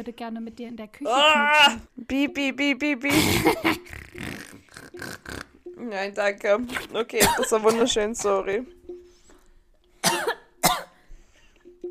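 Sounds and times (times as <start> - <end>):
speech: 0.0 - 4.3, 5.0 - 8.8
person coughing after choking on saliva: 3.1 - 3.8, 7.2 - 8.4, 10.0 - 11.0
soft throat sounds: 3.1 - 5.8, 6.6 - 11.8.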